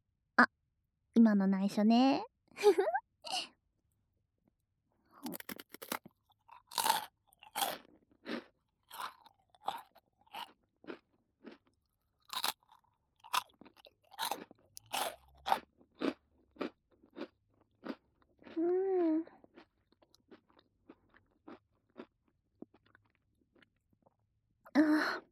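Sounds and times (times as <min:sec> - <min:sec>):
speech: 0:00.4 - 0:00.6, 0:01.2 - 0:03.5
person eating a crunchy salty snack: 0:05.2 - 0:18.6, 0:19.4 - 0:24.2.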